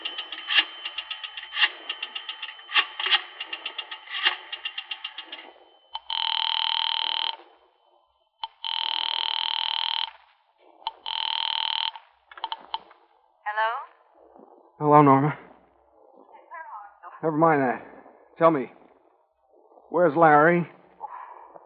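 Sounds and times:
house telephone dialing clicks: 0.0 - 7.4, 8.4 - 10.2, 10.9 - 12.8
speech: 14.8 - 15.4, 17.2 - 18.8, 19.9 - 20.8.

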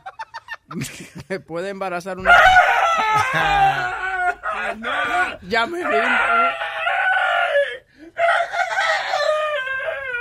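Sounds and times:
speech: 0.7 - 6.7
rooster cackling: 2.2 - 10.1.

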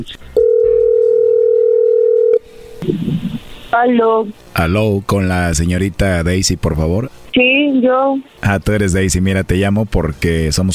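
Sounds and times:
speech: 0.0 - 0.4, 2.8 - 10.7
telephone dialing tone of outgoing call: 0.4 - 2.4.

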